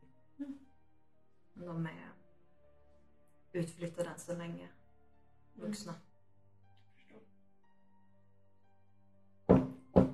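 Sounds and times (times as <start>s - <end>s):
speech: 1.7s - 2.1s, 3.6s - 4.8s, 5.6s - 6.1s
gentle knocks on a hard surface: 9.5s - 10.1s.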